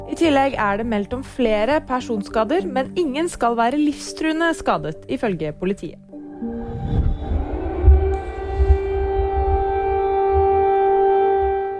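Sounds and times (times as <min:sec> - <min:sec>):
speech: 0:00.1 - 0:06.5
air raid siren wailing: 0:06.1 - 0:11.7
low rumble: 0:06.3 - 0:10.6.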